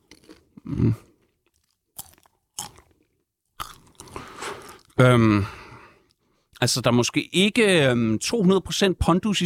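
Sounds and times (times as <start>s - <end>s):
crunchy chewing of bagged popcorn: 0.0s - 5.0s
speech: 0.7s - 1.1s, 5.0s - 5.6s, 6.6s - 9.4s.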